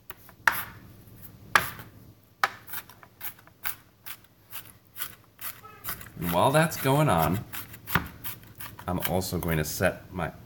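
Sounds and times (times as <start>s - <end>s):
food being minced with a knife: 2.4s - 9.7s
speech: 6.2s - 7.5s, 8.9s - 10.4s.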